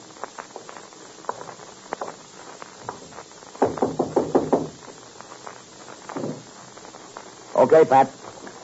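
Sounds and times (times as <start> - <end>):
firm knocks on a door: 3.6 - 4.8
speech: 7.6 - 8.2.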